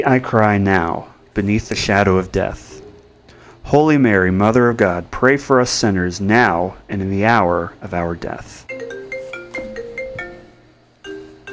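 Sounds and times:
speech: 0.0 - 2.8, 3.7 - 9.0
mobile phone ringtone from an incoming call: 8.7 - 11.5.

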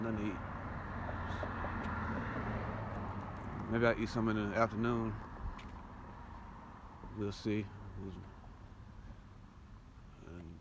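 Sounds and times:
speech: 0.0 - 0.6, 3.7 - 5.3, 7.2 - 8.3
car speeding past with engine and tire rumble: 0.4 - 3.9.

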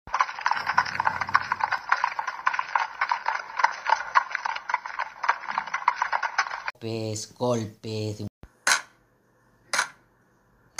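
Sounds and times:
clip-clop of galloping horse hooves: 0.1 - 6.7
speech: 6.8 - 8.3.

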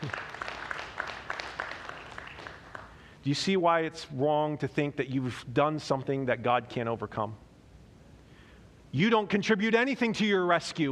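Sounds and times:
crowd clapping and cheering: 0.0 - 3.1
speech: 3.2 - 7.4, 8.9 - 10.9.

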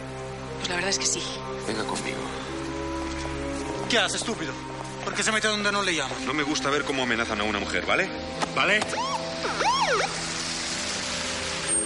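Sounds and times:
street noise: 0.0 - 11.8
speech: 0.7 - 2.7, 3.9 - 10.3
police car siren wailing: 8.8 - 10.6.

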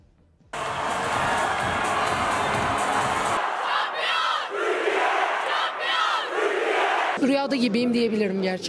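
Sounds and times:
large crowd cheering and shouting after a women's volleyball victory: 0.6 - 7.2
speech: 7.2 - 8.6.

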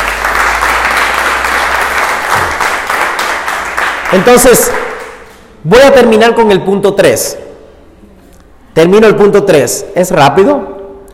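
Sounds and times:
crowd applause: 0.0 - 5.2
speech: 4.1 - 4.8, 5.6 - 7.4, 8.8 - 10.7.

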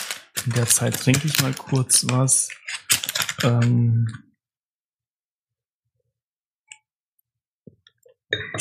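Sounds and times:
plastic packaging of a five-pack of medium-format film rustling: 0.0 - 3.8
sparse crinkling clicks: 0.0 - 3.8
speech: 0.4 - 2.7, 3.4 - 4.3, 8.3 - 8.6.

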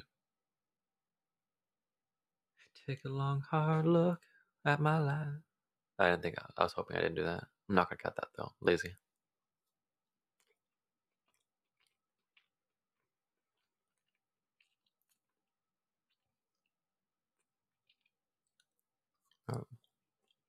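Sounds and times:
speech: 2.8 - 9.0, 19.5 - 19.7
quiet chewing with mouth clicks and smacks: 9.7 - 20.4
swallow or gulp: 19.4 - 19.9.

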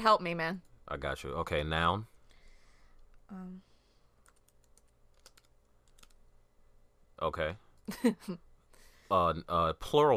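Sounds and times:
speech: 0.0 - 2.1, 3.3 - 3.7, 7.2 - 8.4, 9.1 - 10.1
typing on a computer keyboard: 4.2 - 6.2.

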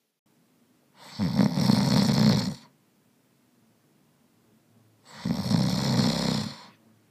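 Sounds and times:
loud drawn-out rattling snores: 1.0 - 2.7, 5.0 - 6.8.

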